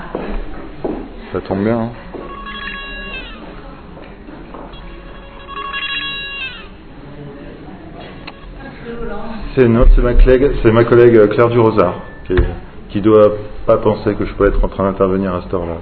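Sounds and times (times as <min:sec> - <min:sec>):
speech: 0:01.3 - 0:02.0, 0:09.6 - 0:15.8
mobile phone ringtone: 0:02.3 - 0:03.4, 0:04.7 - 0:06.7.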